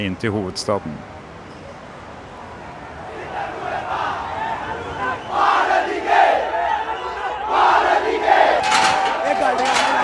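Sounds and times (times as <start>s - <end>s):
speech: 0.0s - 1.2s
large crowd of demonstrators shouting and chanting: 2.5s - 10.0s.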